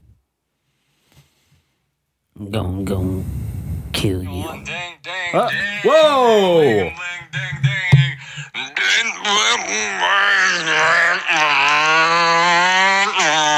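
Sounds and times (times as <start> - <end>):
speech: 2.4 - 3.4, 4.0 - 7.7, 8.6 - 13.5
person imitating a siren-style alarm wail: 5.3 - 6.9, 7.6 - 13.5.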